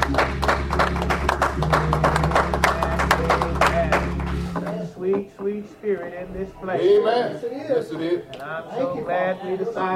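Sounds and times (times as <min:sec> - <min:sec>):
church audience applause during a worship service: 0:00.0 - 0:04.4
speech: 0:05.7 - 0:09.9.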